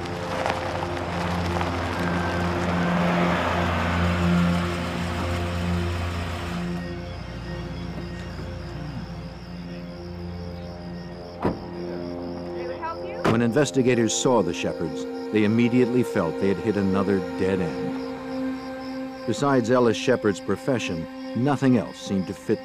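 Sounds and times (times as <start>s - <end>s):
car engine humming as car pulls into a driveway: 0.0s - 20.1s
short thump: 11.4s - 11.7s
speech: 13.4s - 17.9s, 19.3s - 22.6s.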